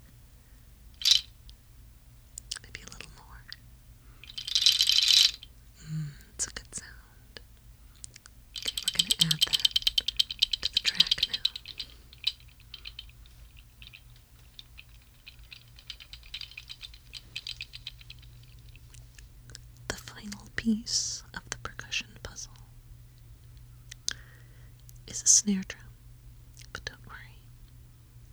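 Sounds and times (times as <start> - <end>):
goat toenail rattle being shaken: 1.0 - 1.5, 2.4 - 6.9, 8.1 - 20.7
speech: 20.7 - 21.1, 25.5 - 25.8.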